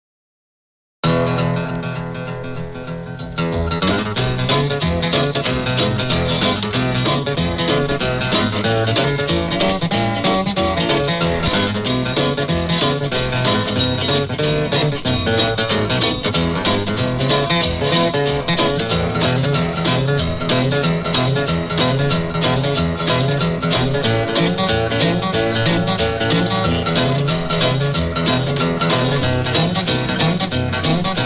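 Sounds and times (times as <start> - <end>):
guitar boogie: 1.0 - 31.2.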